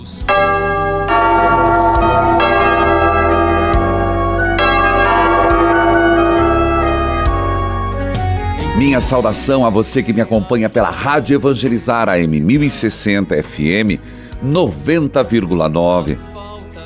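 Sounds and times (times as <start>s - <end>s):
church bells ringing: 0.0s - 10.2s
speech: 8.9s - 16.3s.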